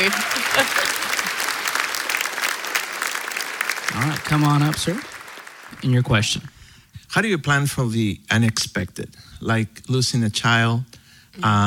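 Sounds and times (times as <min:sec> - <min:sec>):
speech: 0:00.0 - 0:00.8, 0:04.0 - 0:05.1, 0:05.8 - 0:11.6
laughter: 0:00.0 - 0:01.6
audience applauding: 0:00.0 - 0:06.5.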